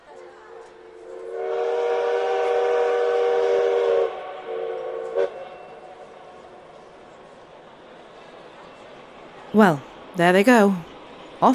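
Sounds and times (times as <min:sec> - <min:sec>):
departing train whistle: 0:01.3 - 0:05.5
speech: 0:09.6 - 0:11.5.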